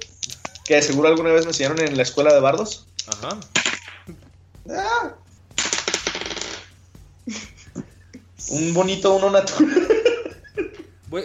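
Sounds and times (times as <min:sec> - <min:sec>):
dice tumbling and clattering on a hard surface: 0:00.0 - 0:03.9, 0:05.6 - 0:06.7
speech: 0:00.7 - 0:05.2, 0:08.5 - 0:10.0
laughter: 0:07.2 - 0:08.4, 0:09.4 - 0:11.0.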